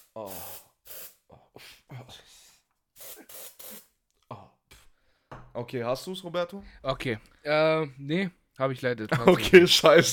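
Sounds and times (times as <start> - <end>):
aerosol deodorant spraying: 0.0 - 1.2, 3.0 - 3.9
speech: 0.2 - 0.6, 5.6 - 10.1.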